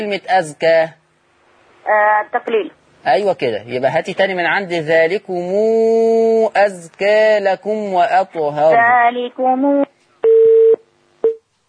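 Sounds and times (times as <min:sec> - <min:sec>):
speech: 0:00.0 - 0:01.0, 0:01.8 - 0:09.9
telephone busy tone after a call is cut off: 0:10.2 - 0:11.4.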